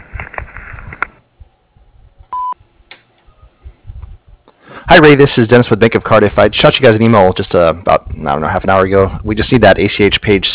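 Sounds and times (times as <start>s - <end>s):
answering machine voicemail beep: 2.3s - 2.6s
speech: 4.9s - 10.5s.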